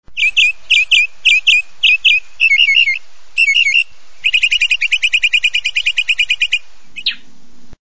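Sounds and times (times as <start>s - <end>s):
mockingbird: 0.2s - 7.3s.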